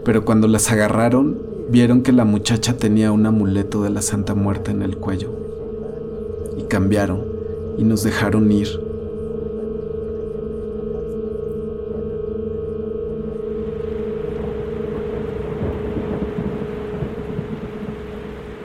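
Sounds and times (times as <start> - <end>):
speech: 0.0 - 5.5, 6.7 - 8.8
faint tonal hum: 0.0 - 18.6
heavy torrential rain at night: 13.7 - 18.6
low rolling thunder: 13.7 - 18.6.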